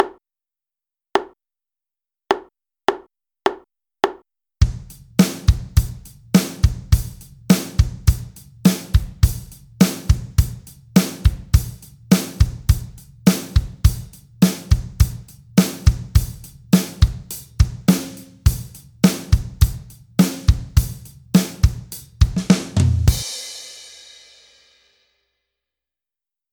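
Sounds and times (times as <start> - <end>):
drums at 104 BPM: 4.6 - 24.9.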